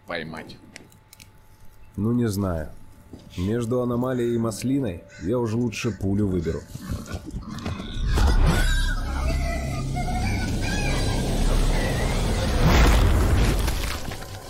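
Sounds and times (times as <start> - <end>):
speech: 0.1 - 0.7, 2.0 - 7.4
continuous video game sound and rumble: 6.3 - 14.4
explosions in a video game: 11.3 - 14.2.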